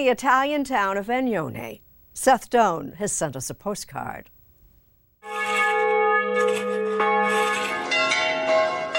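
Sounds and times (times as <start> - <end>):
speech: 0.0 - 4.4
church bells ringing: 5.3 - 8.9.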